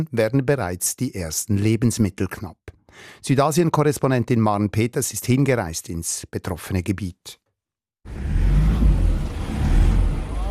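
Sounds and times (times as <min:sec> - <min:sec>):
speech: 0:00.0 - 0:07.4, 0:08.0 - 0:08.4
car engine straining as its tyres spin on a muddy narrow road: 0:08.0 - 0:10.5.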